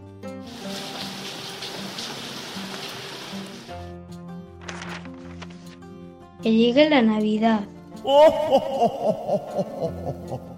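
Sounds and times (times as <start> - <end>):
rain falling: 0.5 - 3.7
speech: 6.4 - 10.5
laughter: 8.1 - 10.5.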